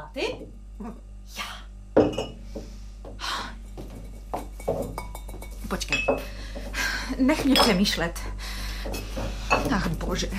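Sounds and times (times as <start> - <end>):
speech: 0.1 - 1.5, 7.2 - 8.3, 9.7 - 10.3
glass bottles clinking as they are handled: 2.0 - 2.4, 3.8 - 6.4, 7.4 - 8.0, 8.9 - 10.0.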